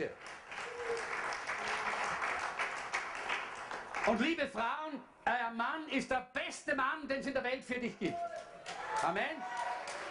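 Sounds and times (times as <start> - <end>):
speech: 0.0 - 0.3, 4.0 - 9.6
audience applause: 0.0 - 4.4, 8.1 - 10.0.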